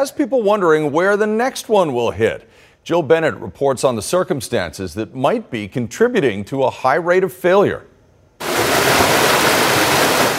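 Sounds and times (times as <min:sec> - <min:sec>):
speech: 0:00.0 - 0:07.9
water gushing from a broken water main: 0:08.4 - 0:10.3.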